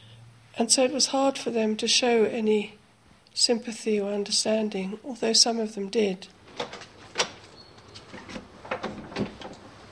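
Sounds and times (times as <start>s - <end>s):
speech: 0.6s - 2.8s, 3.4s - 6.8s
heavy door at a residential threshold being opened or closed: 6.4s - 9.8s.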